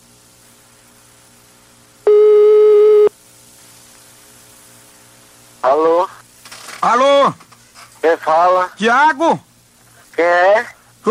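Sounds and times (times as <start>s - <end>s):
quiet hiss: 0.0s - 11.0s
telephone ringback tone as a call connects: 2.1s - 3.1s
speech: 5.6s - 6.2s, 6.8s - 7.4s, 8.0s - 9.5s, 10.2s - 11.0s.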